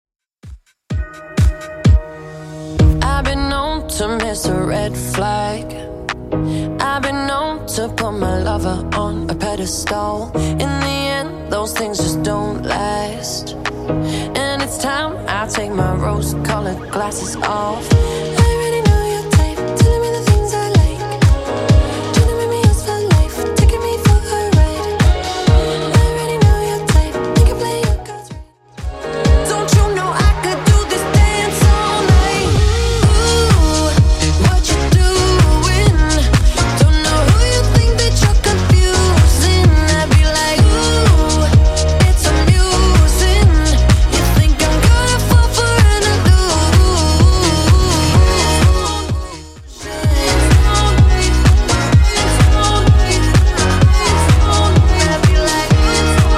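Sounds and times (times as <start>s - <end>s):
Top40 pop music: 0.4s - 56.3s.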